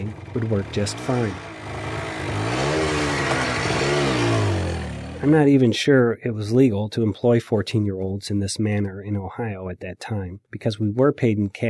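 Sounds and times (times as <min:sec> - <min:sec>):
small moped engine revving: 0:00.0 - 0:05.5
speech: 0:00.1 - 0:01.5, 0:05.2 - 0:11.6.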